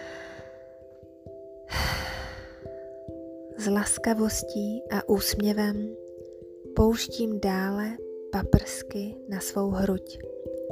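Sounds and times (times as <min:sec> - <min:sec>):
deep breathy inhale during guided meditation: 0:00.0 - 0:00.8, 0:01.7 - 0:02.9
speech: 0:03.6 - 0:06.0, 0:06.8 - 0:10.3.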